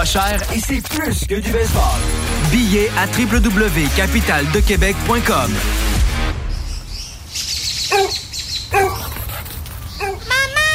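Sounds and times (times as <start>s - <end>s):
speech: 0.0s - 5.9s
birds chirping and tweeting: 6.3s - 10.7s
dog barking outdoors: 7.9s - 9.3s, 9.9s - 10.4s.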